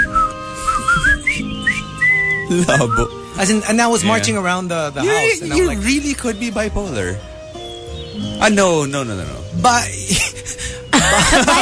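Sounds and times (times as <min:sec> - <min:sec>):
person whistling a bright tune: 0:00.0 - 0:03.2
laughter: 0:02.5 - 0:03.1, 0:10.0 - 0:11.6
speech: 0:02.5 - 0:07.3, 0:08.4 - 0:10.4, 0:11.3 - 0:11.6.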